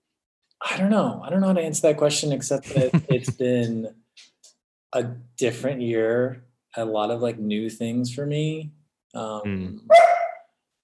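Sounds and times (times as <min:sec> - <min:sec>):
speech: 0:00.6 - 0:04.3, 0:04.9 - 0:10.1
laughter: 0:02.6 - 0:03.9
short low voiced sound: 0:09.4 - 0:09.8
dog barking: 0:09.9 - 0:10.5.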